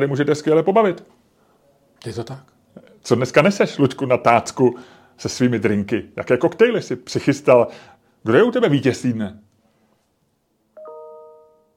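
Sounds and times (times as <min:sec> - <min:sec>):
speech: 0:00.0 - 0:01.2, 0:02.0 - 0:09.4
bright two-note ding chime: 0:10.8 - 0:11.7.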